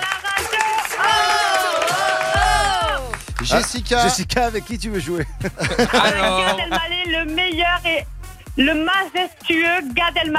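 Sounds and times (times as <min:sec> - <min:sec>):
audience clapping for a radio game show contestant: 0:00.0 - 0:04.2
people whooping and cheering for a radio game show contestant: 0:00.2 - 0:03.3
speech: 0:03.5 - 0:10.3
laughter: 0:05.0 - 0:07.0.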